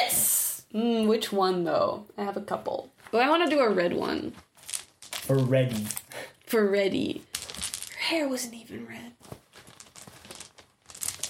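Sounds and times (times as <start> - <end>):
speech: 0.7 - 4.5, 5.3 - 7.3, 8.1 - 9.4
crinkly rustling: 4.3 - 6.1, 7.2 - 8.0, 9.2 - 11.2
dice clicking and rattling while rummaging through a pile: 4.4 - 6.2, 6.9 - 8.2, 9.2 - 11.2.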